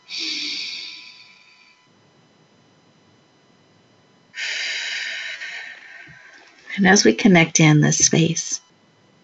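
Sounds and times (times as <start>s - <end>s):
deep breath in through the nose during a breathing exercise: 0.0s - 1.8s, 4.4s - 6.7s
long airy exhale through the mouth during a breathing exercise: 0.1s - 1.7s, 4.4s - 6.3s
speech: 6.8s - 8.6s.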